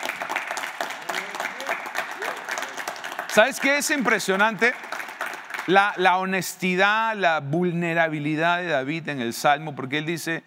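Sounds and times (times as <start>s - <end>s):
audience clapping: 0.0s - 6.5s
speech: 0.8s - 1.0s, 3.3s - 4.9s, 5.6s - 10.4s.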